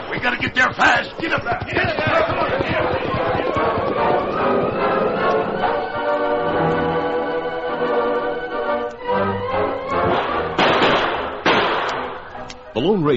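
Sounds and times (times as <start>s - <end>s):
distant gunfire: 0.0s - 5.0s, 10.0s - 12.2s
speech: 0.1s - 4.6s, 12.8s - 13.1s
dense orchestral score: 3.2s - 13.1s.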